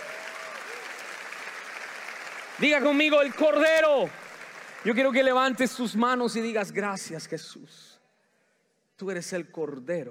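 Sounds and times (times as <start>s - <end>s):
audience applauding loudly: 0.0s - 6.0s
speech: 2.6s - 4.2s, 4.8s - 8.0s, 9.0s - 10.0s.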